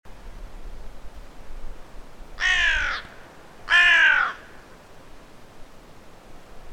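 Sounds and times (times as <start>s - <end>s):
low background hiss: 0.1s - 6.7s
carrion crow Corvus corone cawing: 2.4s - 4.7s.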